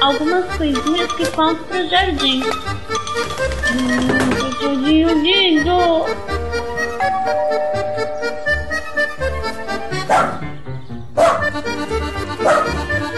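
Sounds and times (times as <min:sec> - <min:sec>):
music: 0:00.0 - 0:13.1
speech: 0:00.1 - 0:06.4
dog barking: 0:10.0 - 0:10.4, 0:11.2 - 0:11.5, 0:12.4 - 0:12.8.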